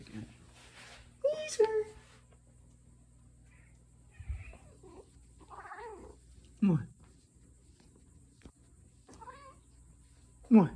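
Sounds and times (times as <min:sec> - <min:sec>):
cat meowing: 0:03.5 - 0:06.2, 0:09.1 - 0:09.6
speech: 0:06.6 - 0:06.9, 0:10.5 - 0:10.7.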